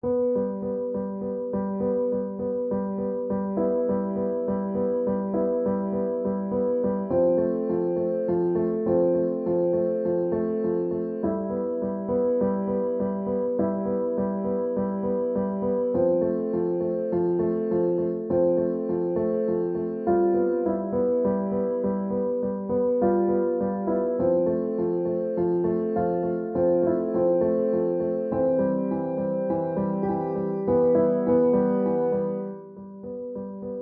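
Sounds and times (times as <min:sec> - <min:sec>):
piano improvisation: 0:00.0 - 0:33.7.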